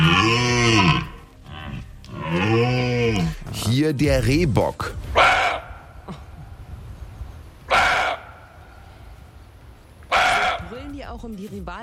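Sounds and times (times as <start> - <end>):
red deer stag roaring: 0.0 - 3.4, 7.7 - 8.4, 10.1 - 10.8
speech: 3.8 - 5.0, 11.4 - 11.8.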